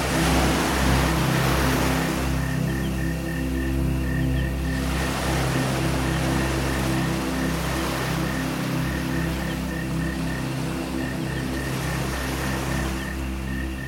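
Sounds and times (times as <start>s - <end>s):
chorus of frogs and insects calling: 0.0s - 13.8s
gentle ocean waves washing in on a tropical beach: 0.0s - 13.8s
low constant rumble: 0.0s - 13.8s.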